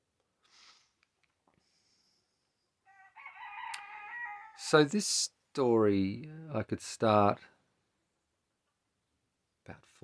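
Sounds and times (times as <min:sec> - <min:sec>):
rooster crowing: 0:02.8 - 0:04.7
speech: 0:04.7 - 0:07.5, 0:09.7 - 0:10.0.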